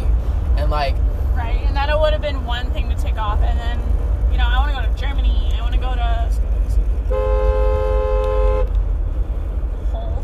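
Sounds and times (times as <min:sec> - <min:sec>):
low rumble of a moving vehicle's interior: 0:00.0 - 0:10.2
speech: 0:01.9 - 0:06.4
car horn blast: 0:07.0 - 0:08.8.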